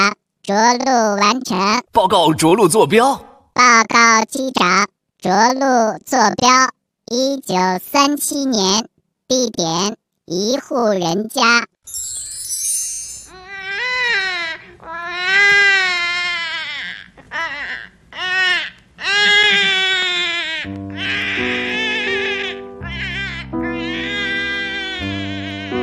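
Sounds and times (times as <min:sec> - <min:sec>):
speech: 0:00.5 - 0:12.2
loud infant crying in a household: 0:13.3 - 0:25.8.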